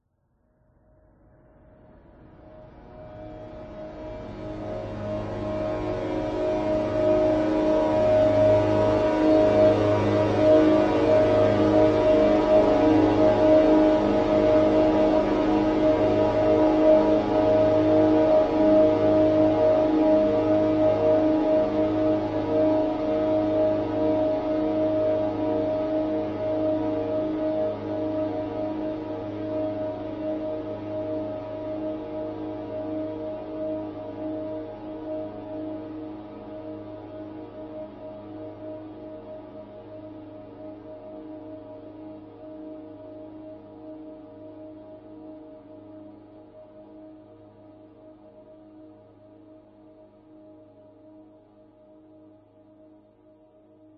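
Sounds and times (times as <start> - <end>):
long dark mysterious sinister horror drone: 2.2 - 41.2.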